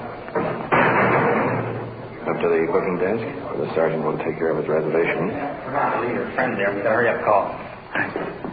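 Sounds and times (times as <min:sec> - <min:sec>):
big heavy iron door slamming shut: 0:00.4 - 0:02.1
speech: 0:02.4 - 0:08.4.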